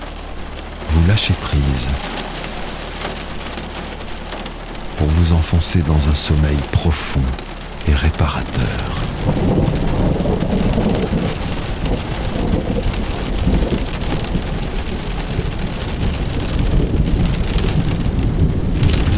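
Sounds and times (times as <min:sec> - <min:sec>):
heavy rain pattering in a thunderstorm: 0:00.0 - 0:19.1
speech: 0:01.0 - 0:02.4, 0:05.0 - 0:13.0
deep thunder rumbling: 0:08.8 - 0:19.1.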